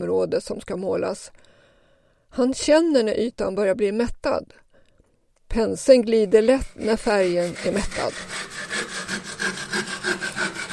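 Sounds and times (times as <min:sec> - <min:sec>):
speech: 0:00.1 - 0:01.5, 0:02.3 - 0:04.6, 0:05.5 - 0:09.6
wood being sawn by hand with back-and-forth strokes: 0:06.3 - 0:10.7.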